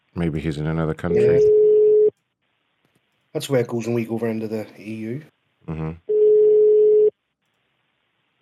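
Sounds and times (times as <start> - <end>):
speech: 0.2 - 1.6, 3.4 - 6.1
European-style phone ringback tone: 1.1 - 2.1, 6.1 - 7.1.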